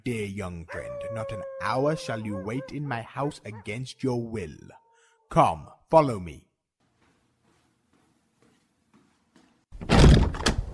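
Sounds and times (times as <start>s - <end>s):
speech: 0.0s - 6.5s
heavy wooden bolted door thunking against its bolt: 9.8s - 10.7s.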